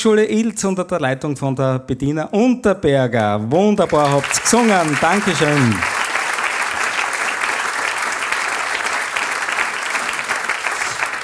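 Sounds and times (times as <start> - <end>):
speech: 0.0 - 6.0
audience applause: 3.8 - 11.2.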